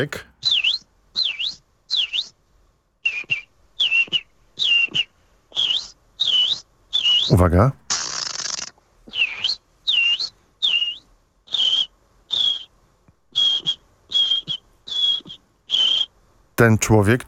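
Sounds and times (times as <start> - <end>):
speech: 0.0 - 0.3, 7.3 - 7.8, 16.6 - 17.2
person whistling an imitation of birdsong: 0.0 - 2.4, 3.0 - 7.4, 9.1 - 12.7, 13.3 - 16.1.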